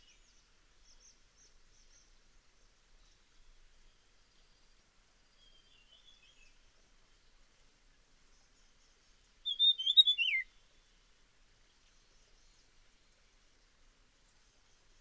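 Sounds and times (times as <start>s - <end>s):
dusky fulvetta calling: 9.4s - 10.6s.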